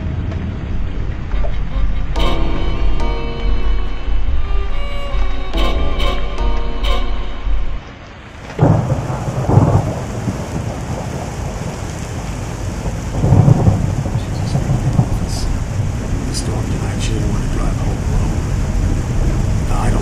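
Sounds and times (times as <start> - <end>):
heavy rain: 0.0 - 20.0
deep rolls of thunder: 7.5 - 20.0.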